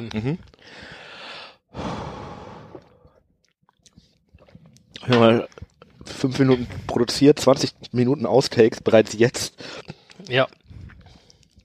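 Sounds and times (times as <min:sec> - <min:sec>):
speech: 0:00.0 - 0:01.0, 0:05.0 - 0:10.6
deep breaths in and out: 0:00.5 - 0:03.2, 0:09.6 - 0:11.6.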